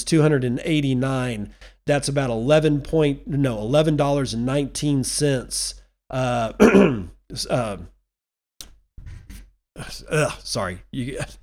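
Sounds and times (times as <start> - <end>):
speech: 0.0 - 7.9, 9.8 - 11.4
throat clearing with rough gravelly bursts and groaning tones: 6.6 - 7.1.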